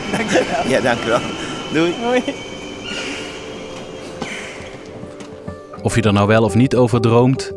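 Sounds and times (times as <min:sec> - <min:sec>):
laughter: 0:00.0 - 0:05.2
high metallic train brake squeals: 0:00.0 - 0:05.5
train rumbling arriving at station: 0:00.0 - 0:06.9
speech: 0:00.2 - 0:03.0, 0:05.8 - 0:07.5.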